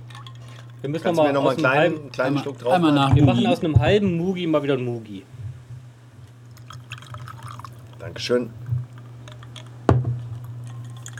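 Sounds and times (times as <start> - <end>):
gin being poured into a glass: 0.0 - 0.8, 6.5 - 11.1
low hum: 0.0 - 11.1
speech: 0.8 - 5.4, 8.1 - 8.6.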